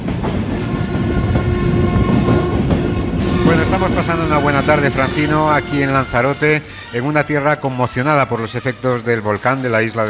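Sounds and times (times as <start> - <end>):
clickety-clack of train wheels on the rails: 0.0 - 4.4
train rumbling along: 0.0 - 8.3
speech: 3.8 - 10.0.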